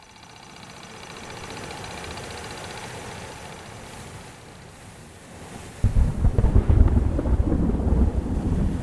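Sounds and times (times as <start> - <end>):
rain in a heavy thunderstorm: 0.0 - 8.8
wind in a heavy thunderstorm: 0.0 - 8.8
deep rumbling thunder in a heavy thunderstorm: 5.8 - 8.8.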